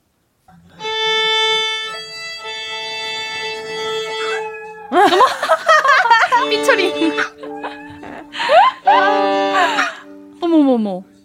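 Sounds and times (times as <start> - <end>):
violin long bowed note during practice at home: 0.8 - 4.8, 6.3 - 10.6
dog howling along with violin: 3.9 - 5.3, 7.2 - 9.8
laughter: 4.9 - 10.0.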